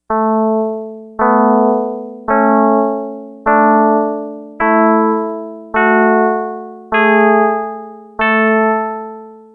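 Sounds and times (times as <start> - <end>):
chords played in a scale: 0.1 - 9.5.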